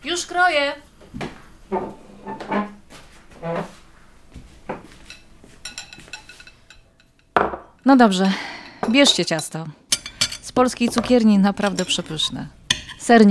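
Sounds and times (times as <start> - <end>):
speech: 0.1 - 2.6, 7.9 - 9.8, 10.6 - 13.2
dishes clattering: 4.7 - 7.8, 8.4 - 13.2
ceramic cups and small plates clinking as set down on a table: 4.7 - 13.2.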